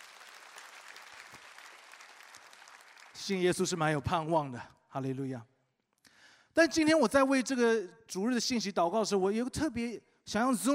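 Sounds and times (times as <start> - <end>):
audience clapping: 0.0 - 3.5
speech: 3.2 - 5.5, 6.6 - 10.7.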